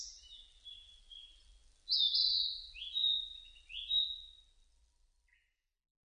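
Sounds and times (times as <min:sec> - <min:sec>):
Narcissus flycatcher song of high clear whistled phrases: 0:00.0 - 0:04.4.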